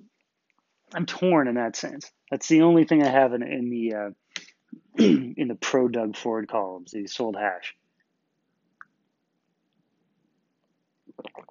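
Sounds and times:
speech: 0:00.9 - 0:04.2, 0:05.0 - 0:07.8
person gulping water: 0:05.0 - 0:05.3, 0:11.0 - 0:11.5.

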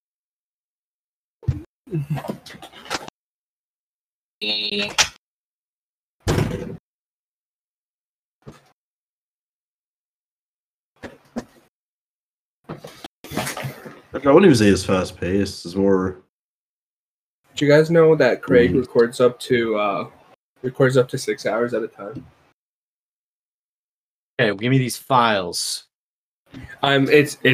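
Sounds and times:
speech: 0:01.9 - 0:02.8, 0:04.4 - 0:05.1, 0:14.1 - 0:16.2, 0:17.6 - 0:22.4, 0:24.4 - 0:25.9, 0:26.5 - 0:27.5
door creaking squeal: 0:04.4 - 0:05.2
heavier door thud: 0:06.2 - 0:06.8.

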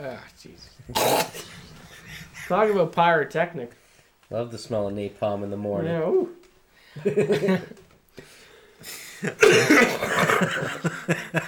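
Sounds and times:
speech: 0:00.0 - 0:06.4, 0:07.0 - 0:11.4
heavy phlegmy coughing: 0:00.9 - 0:02.6, 0:09.2 - 0:10.8
laughter: 0:01.6 - 0:03.0, 0:07.0 - 0:07.9, 0:09.2 - 0:11.4.

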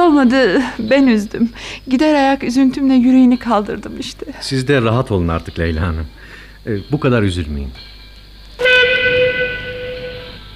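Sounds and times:
speech: 0:00.1 - 0:07.9
train whistle blast: 0:08.6 - 0:10.5.

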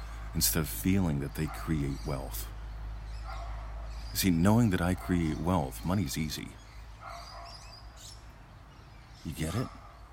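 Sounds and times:
speech: 0:00.4 - 0:02.6, 0:04.1 - 0:06.6, 0:09.2 - 0:09.8
dog barking: 0:01.3 - 0:02.3, 0:03.2 - 0:04.1, 0:04.8 - 0:05.7, 0:07.0 - 0:07.9, 0:09.4 - 0:10.1.

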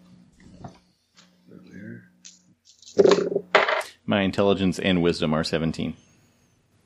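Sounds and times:
dice rolling on a hard tabletop: 0:02.8 - 0:03.9
speech: 0:04.1 - 0:06.1.

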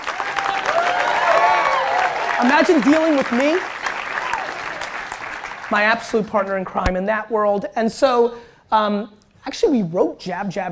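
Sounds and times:
crowd applauding: 0:00.0 - 0:06.1
faint voices or cheers: 0:00.1 - 0:02.7, 0:04.1 - 0:04.9
speech: 0:02.4 - 0:03.7, 0:05.7 - 0:10.7.

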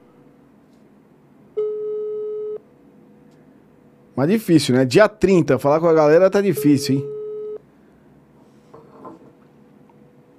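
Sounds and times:
telephone busy signal on an outgoing call: 0:01.6 - 0:02.6, 0:06.6 - 0:07.6
speech: 0:04.2 - 0:07.2.

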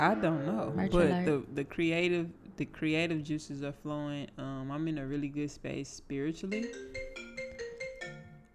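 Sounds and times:
speech: 0:00.0 - 0:07.0
phone ringing with bright electronic ringtone: 0:06.5 - 0:08.5.

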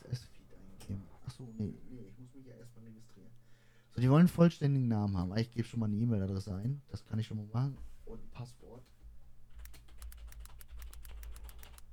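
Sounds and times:
speech: 0:02.4 - 0:09.0
typing on a computer keyboard: 0:09.5 - 0:11.9.

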